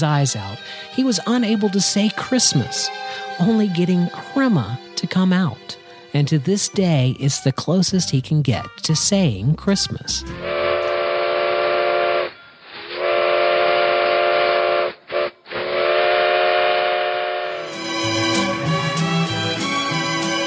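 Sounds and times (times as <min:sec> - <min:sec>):
speech: 0:00.0 - 0:10.6
steam train whistle blowing: 0:00.6 - 0:05.0, 0:10.4 - 0:20.4.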